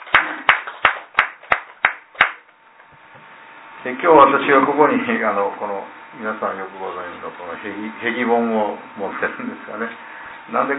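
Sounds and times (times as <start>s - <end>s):
applause celebrating a birthday: 0.0s - 2.5s
speech: 3.8s - 10.7s.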